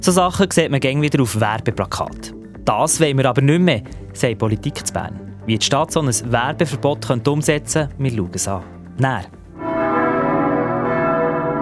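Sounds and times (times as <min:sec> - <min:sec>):
speech: 0:00.0 - 0:09.4
deep bells of the Münster cathedral in Bern ringing: 0:09.5 - 0:11.6.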